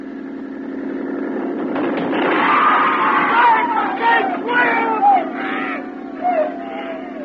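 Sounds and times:
boat engine droning: 0:00.0 - 0:07.2
rough clattering jolt of speedboat ramming boat: 0:00.8 - 0:05.0
high wailing cries: 0:01.9 - 0:07.2
crowd of people screaming and shouting in panic: 0:02.1 - 0:07.2.

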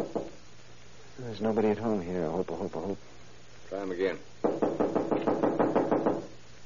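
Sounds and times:
knuckles knocking on a door: 0:00.0 - 0:00.4, 0:04.4 - 0:06.3
speech: 0:01.3 - 0:04.6.

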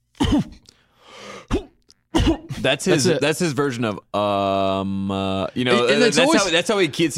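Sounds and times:
person imitating a man's throaty cough: 0:00.2 - 0:00.6, 0:01.5 - 0:03.1
speech: 0:00.3 - 0:00.6, 0:02.6 - 0:07.1
soft breathy exhale: 0:00.7 - 0:01.5.

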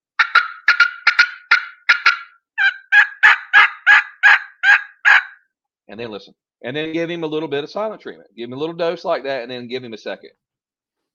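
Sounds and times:
turkey call cutting notes worked by a hunter: 0:00.2 - 0:05.5
speech: 0:05.9 - 0:10.4.

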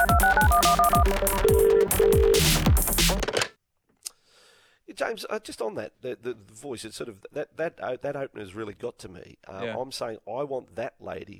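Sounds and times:
Motorola flip-phone ringtone electronic jingle: 0:00.0 - 0:02.7
speech: 0:05.1 - 0:11.3.

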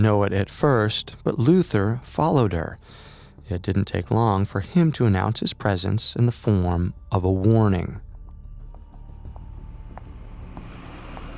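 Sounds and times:
speech: 0:00.0 - 0:08.1
car engine rumble approaching: 0:08.0 - 0:11.3
car road noise: 0:09.0 - 0:11.3.

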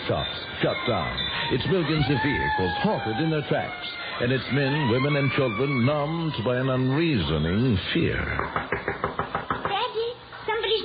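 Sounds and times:
speech: 0:00.1 - 0:09.3
knocking on a door: 0:08.3 - 0:09.9.

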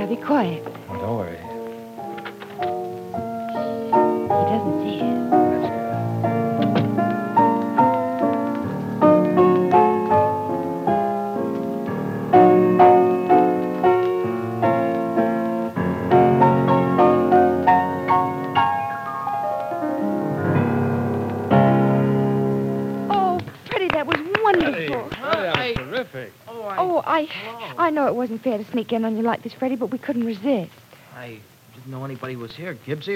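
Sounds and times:
piano playing notes and chords: 0:00.0 - 0:26.0
speech: 0:00.1 - 0:01.5, 0:28.3 - 0:33.1.

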